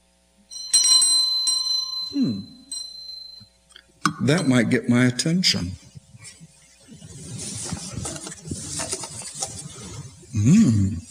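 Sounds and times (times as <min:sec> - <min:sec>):
small hand bell ringing: 0:00.5 - 0:03.5, 0:04.1 - 0:04.9
speech: 0:02.1 - 0:02.6, 0:04.2 - 0:05.8, 0:10.4 - 0:11.0.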